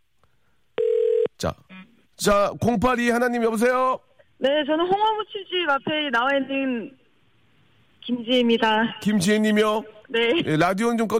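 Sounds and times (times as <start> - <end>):
telephone line ringing with a steady electronic tone: 0.8 - 1.3
speech: 1.4 - 7.0, 8.0 - 11.1.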